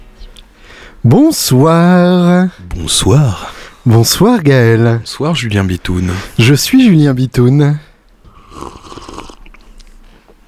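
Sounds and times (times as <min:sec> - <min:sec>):
speech: 0:01.0 - 0:07.9
person gulping and swallowing while drinking: 0:08.2 - 0:09.8.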